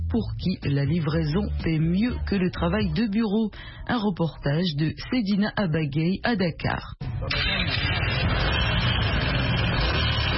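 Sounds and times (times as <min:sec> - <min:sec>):
speech: 0:00.1 - 0:08.6
busy street traffic in Dakar Senegal: 0:07.0 - 0:10.3
motor scooter engine droning in Dakar Senegal: 0:07.6 - 0:10.3.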